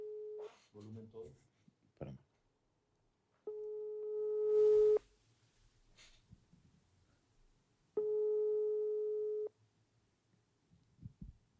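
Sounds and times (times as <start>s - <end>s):
speech: 0.8s - 2.2s
telephone ringback tone of electronic beeps: 3.5s - 5.0s, 8.0s - 9.5s
breathing: 5.9s - 6.3s.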